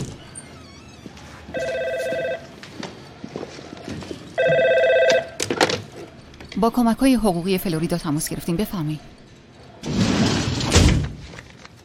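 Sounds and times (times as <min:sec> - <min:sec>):
clattering noises: 0:00.0 - 0:06.9, 0:09.1 - 0:11.8
telephone ringing with electronic warble: 0:01.5 - 0:02.6, 0:04.4 - 0:05.4
speech: 0:06.6 - 0:09.1.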